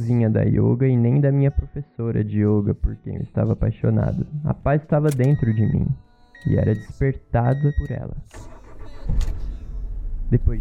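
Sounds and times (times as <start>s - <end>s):
speech: 0.0s - 8.5s, 10.3s - 10.6s
car engine cranking and starting: 5.0s - 5.5s, 7.5s - 10.6s.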